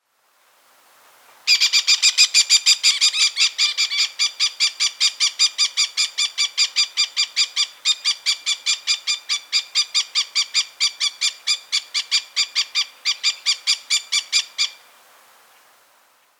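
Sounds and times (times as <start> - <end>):
Pyrrhura frontalis calls: 1.5 - 14.8.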